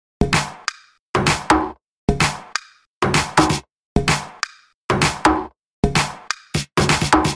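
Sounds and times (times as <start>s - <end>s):
techno drums: 0.2s - 7.3s.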